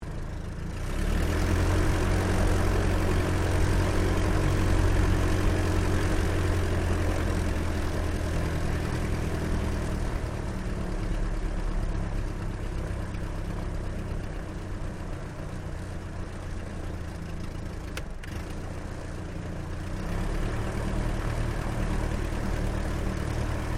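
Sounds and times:
DH82A de Havilland Tiger Moth biplane taxiing on grass heard from interior: 0.0 - 23.7.

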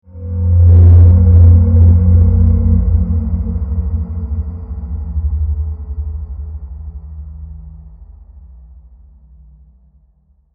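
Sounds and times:
heavy science fiction magnetic ray beam: 0.2 - 4.8.

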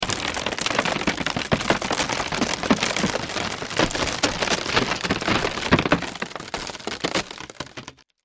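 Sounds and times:
wooden ceiling cracking, splintering and splitting in a crash: 0.0 - 8.2.

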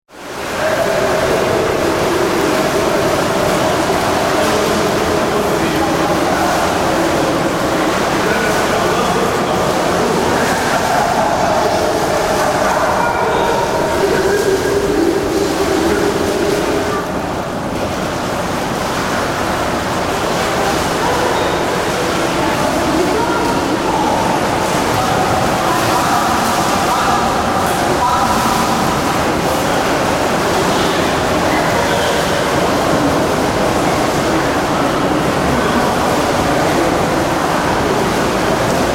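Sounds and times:
people enjoying an indoor swimming pool: 0.1 - 38.9.

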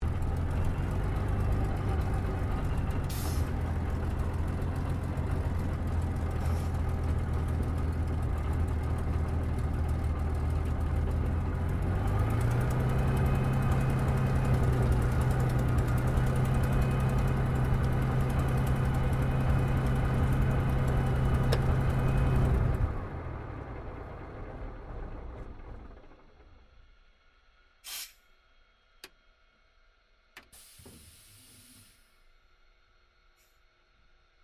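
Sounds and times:
Supermarine Spitfire Mk VIII engine shutting down heard from the interior: 0.0 - 26.6.

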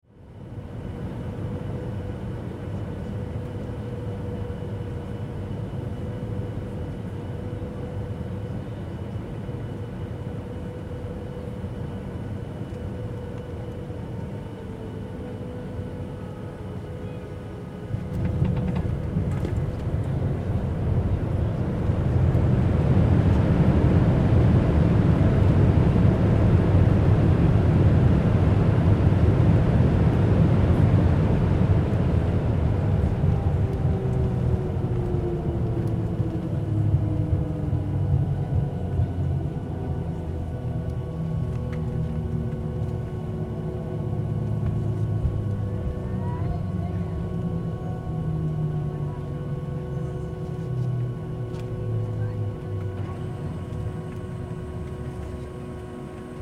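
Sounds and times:
commercial airliner landing heard from the interior: 0.1 - 56.4.

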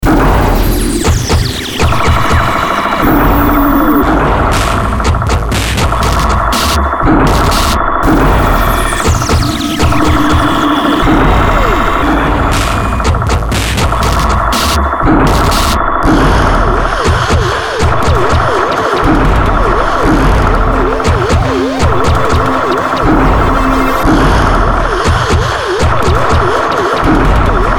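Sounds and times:
distorted synth drum loop: 0.0 - 27.7
synth sweeper lead: 0.1 - 4.9, 8.0 - 13.1, 18.8 - 25.0.

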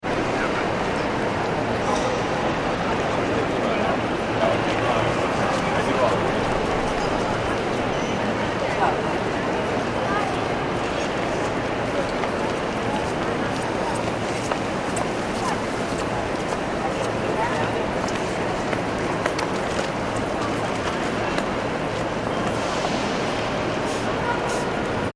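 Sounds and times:
train station main concourse ambience in New York City: 0.0 - 25.1.

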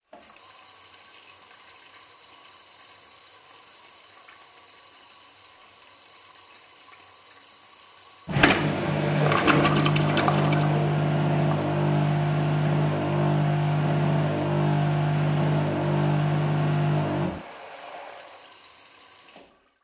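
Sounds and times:
household toilet filling with water: 0.0 - 19.8
household toilet macerator operating: 8.3 - 17.5.

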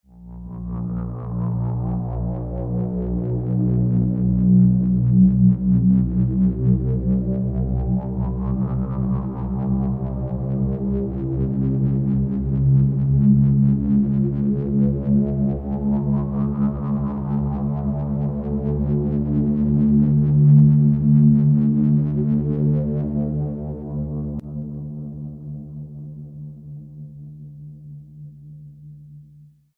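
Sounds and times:
slow ascending ominous drone transition: 0.2 - 26.6.

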